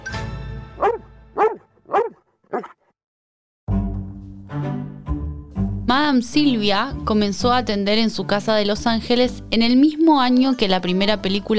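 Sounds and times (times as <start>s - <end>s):
small dog giving sharp yappy barks: 0.8s - 2.8s
speech: 2.6s - 2.8s, 5.9s - 11.5s.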